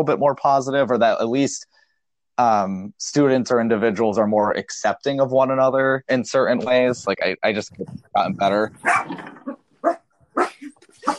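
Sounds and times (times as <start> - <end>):
speech: 0.0 - 1.7, 2.4 - 10.0
dog barking: 8.8 - 9.2, 9.8 - 11.1.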